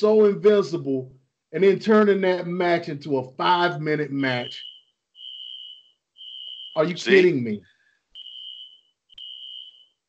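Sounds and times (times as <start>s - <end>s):
speech: 0.0s - 4.7s, 6.8s - 7.7s
fire alarm high-pitched tones: 4.3s - 7.2s, 8.2s - 10.0s.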